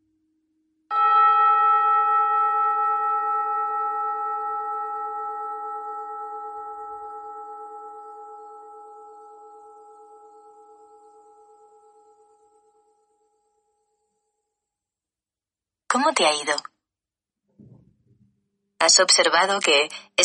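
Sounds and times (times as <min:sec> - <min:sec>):
meditation gong struck and ringing: 0:00.9 - 0:10.4
speech: 0:16.0 - 0:16.7, 0:18.9 - 0:20.2.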